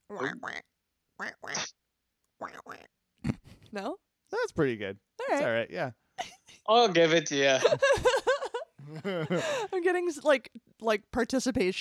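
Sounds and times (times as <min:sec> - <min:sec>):
speech: 0:00.1 - 0:01.6, 0:03.7 - 0:04.0, 0:04.6 - 0:06.0, 0:06.7 - 0:08.1, 0:08.9 - 0:11.7
person's voice imitating nasal harsh duck quacks: 0:00.1 - 0:01.7, 0:02.4 - 0:03.4
laughter: 0:07.5 - 0:09.8.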